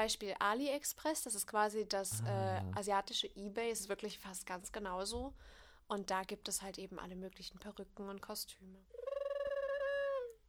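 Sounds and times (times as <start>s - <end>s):
speech: 0.0s - 9.0s
pigeon cooing: 9.0s - 10.4s.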